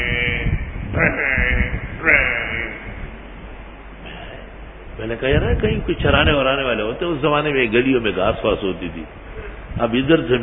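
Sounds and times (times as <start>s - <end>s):
voice imitating a buffalo lowing in a street at night: 0.0s - 3.2s
speech: 1.0s - 2.2s, 5.1s - 9.2s, 9.8s - 10.4s.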